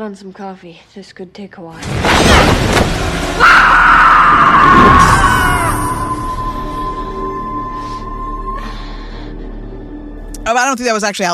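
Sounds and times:
speech: 0.0s - 3.8s, 10.5s - 11.3s
woman screaming: 3.4s - 6.9s.

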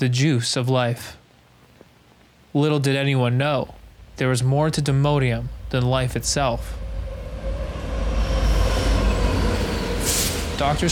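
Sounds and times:
speech: 0.0s - 1.2s, 2.6s - 6.8s, 10.6s - 10.9s
faint tonal whine: 3.2s - 10.9s
train rumbling on rails: 3.8s - 10.9s
brief hiss: 10.0s - 10.6s.

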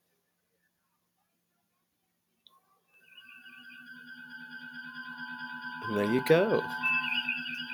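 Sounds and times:
short electronic chirp from a smart speaker: 3.0s - 7.7s
layered gently warbling sci-fi tones: 3.2s - 7.7s
steady low hum of starship bridge ambience: 3.2s - 7.7s
speech: 6.0s - 6.9s.

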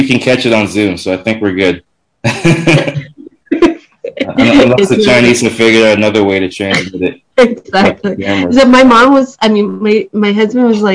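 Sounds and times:
person clearing throat: 0.0s - 3.1s, 4.3s - 7.1s, 7.8s - 8.5s
speech: 0.0s - 3.6s, 4.3s - 10.9s
laughter: 0.0s - 8.6s.

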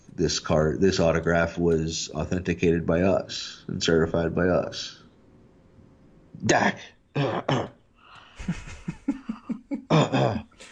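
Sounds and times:
speech: 0.2s - 5.0s, 6.4s - 7.8s, 8.4s - 9.2s, 9.9s - 10.5s
harsh hacking coughs in a fit: 7.2s - 7.7s, 9.9s - 10.4s
laughter: 8.4s - 10.4s.

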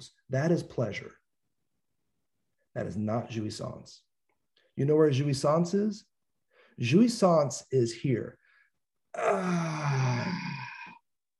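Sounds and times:
speech: 0.0s - 1.2s, 2.8s - 4.1s, 4.8s - 6.1s, 6.8s - 8.4s, 9.2s - 10.1s
person imitating the groan of sitting down: 9.1s - 11.0s.

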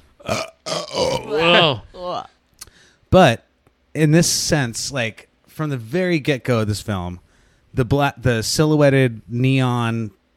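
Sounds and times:
loud croaky burp: 0.2s - 1.8s
speech: 0.3s - 0.5s, 3.1s - 3.4s, 4.0s - 10.2s.

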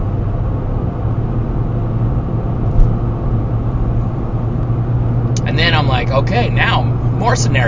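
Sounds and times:
small car cruising on the road heard from inside the cabin: 0.0s - 7.6s
soft bump: 2.6s - 3.0s
speech: 7.4s - 7.6s.

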